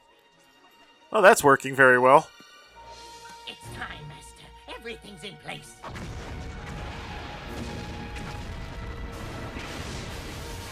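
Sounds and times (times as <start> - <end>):
speech: 1.1 - 2.4, 4.9 - 6.6
rumbling explosion blasts and crashes: 5.8 - 10.6.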